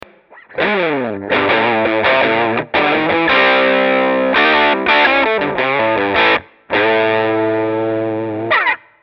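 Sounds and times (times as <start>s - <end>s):
crunchy distorted guitar through amplifier: 0.0s - 9.0s.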